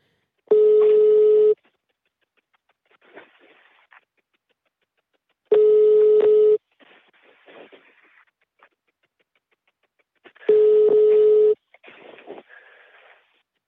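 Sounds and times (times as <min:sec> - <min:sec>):
telephone ringback tone with no answer: 0:00.5 - 0:01.6, 0:05.5 - 0:06.6, 0:10.5 - 0:11.6.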